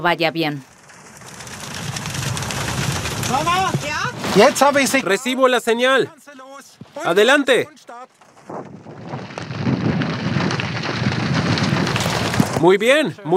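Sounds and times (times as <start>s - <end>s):
speech: 0.0s - 0.7s, 3.3s - 6.4s, 7.0s - 8.8s, 12.6s - 13.3s
steady heavy rain hissing: 0.7s - 5.0s, 8.9s - 12.6s.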